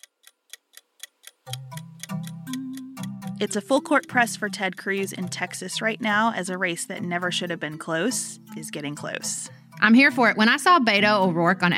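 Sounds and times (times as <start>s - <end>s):
clock timer ticking: 0.0s - 10.1s
speech: 3.4s - 11.7s.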